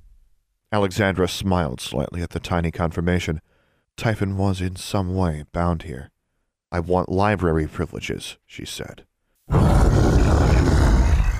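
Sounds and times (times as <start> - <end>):
speech: 0.7 - 6.1, 6.7 - 9.7, 10.3 - 10.7
loud deep creature roar: 9.5 - 11.3.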